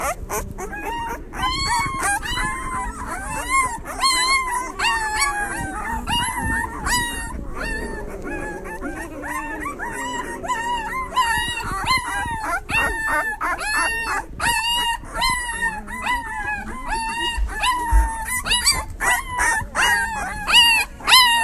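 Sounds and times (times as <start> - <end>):
low murmurs: 0.0 - 21.4
ten-day-old puppies whimpering and squealing: 0.0 - 21.4
soft shuffling: 0.1 - 21.1.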